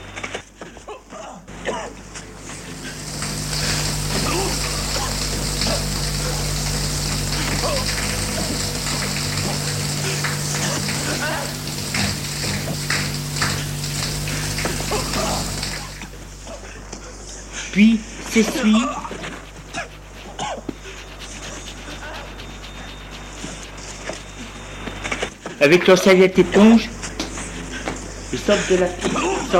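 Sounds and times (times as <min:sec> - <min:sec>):
shower water running: 0:01.9 - 0:16.6, 0:17.9 - 0:25.3
shower spray splashing on a hard surface: 0:02.2 - 0:16.3, 0:18.4 - 0:25.3
speech: 0:18.4 - 0:19.2, 0:25.6 - 0:27.0, 0:28.5 - 0:29.5.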